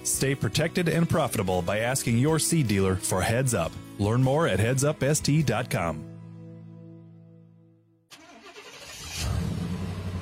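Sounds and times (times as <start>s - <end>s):
speech: 0.0s - 6.1s
suburban truck engine starting, revving and pulling away: 8.1s - 10.2s.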